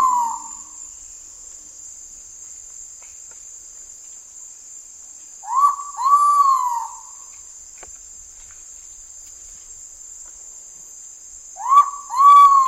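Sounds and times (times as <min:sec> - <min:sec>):
ivory-breasted pitta Pitta maxima two-part whistled call: 0:00.0 - 0:00.8, 0:05.4 - 0:07.2, 0:11.6 - 0:12.6.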